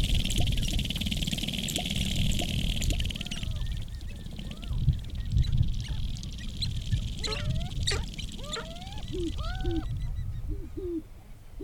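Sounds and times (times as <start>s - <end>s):
sharp-tailed grouse lek calls in tall prairie grasslands at Wainwright Alberta: 0.0s - 11.0s
steady low wind rumble: 0.0s - 11.6s.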